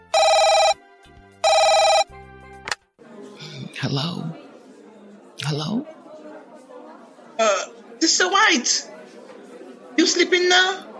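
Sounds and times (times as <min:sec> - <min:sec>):
telephone ringing: 0:00.0 - 0:00.8, 0:01.4 - 0:02.1
speech: 0:03.8 - 0:04.4, 0:05.4 - 0:06.0, 0:07.4 - 0:08.9, 0:10.0 - 0:10.9.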